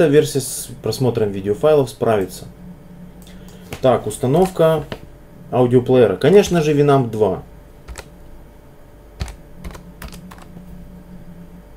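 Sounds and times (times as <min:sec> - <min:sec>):
speech: 0:00.0 - 0:02.6, 0:03.8 - 0:07.5
faint steady hum: 0:00.0 - 0:11.7
computer keyboard typing while installing an audio player: 0:03.7 - 0:05.0, 0:07.9 - 0:08.1, 0:09.2 - 0:10.6.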